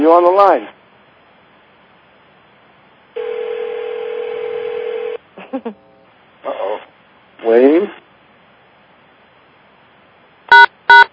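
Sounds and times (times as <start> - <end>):
speech: 0.1 - 0.8, 5.6 - 6.6, 7.4 - 8.0
telephone conference line dial tone: 3.2 - 5.2
short electronic beeps: 10.5 - 11.1.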